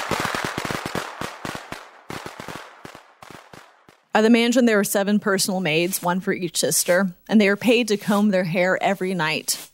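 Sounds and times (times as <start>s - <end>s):
fireworks exploding: 0.0s - 4.8s
speech: 4.2s - 9.6s.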